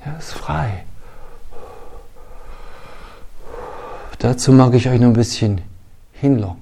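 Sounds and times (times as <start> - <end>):
speech: 0.1 - 0.9, 4.2 - 6.6
slow deep breathing: 0.9 - 4.3.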